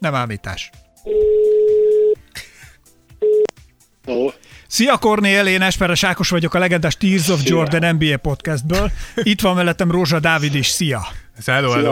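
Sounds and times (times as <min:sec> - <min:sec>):
speech: 0:00.0 - 0:01.2, 0:04.1 - 0:11.8
telephone ringback tone on a call: 0:01.1 - 0:02.2, 0:03.2 - 0:03.5.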